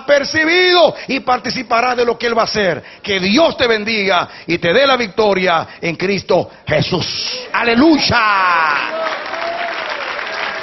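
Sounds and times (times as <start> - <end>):
speech: 0.2 - 9.0
audience applauding: 8.6 - 10.6.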